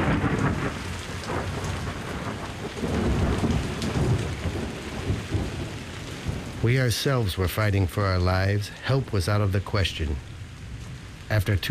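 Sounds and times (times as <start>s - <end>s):
deep thunder rumbling and rolling: 0.0s - 11.6s
heavy rain pouring: 0.0s - 11.6s
speech: 6.6s - 10.3s, 11.3s - 11.6s.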